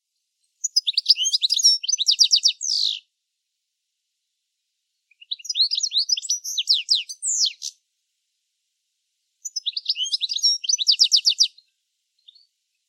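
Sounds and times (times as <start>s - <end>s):
bird calling with rapid high chirps, trills and a buzzy note: 0.6s - 3.0s, 5.1s - 7.8s, 9.4s - 11.6s.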